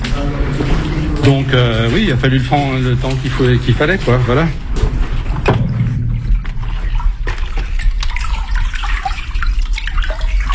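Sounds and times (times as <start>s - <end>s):
water rushing through an irrigation pipe feeding banana and tomato fields: 0.0s - 10.5s
speech: 1.3s - 4.6s
knocks and splashes: 2.8s - 10.5s.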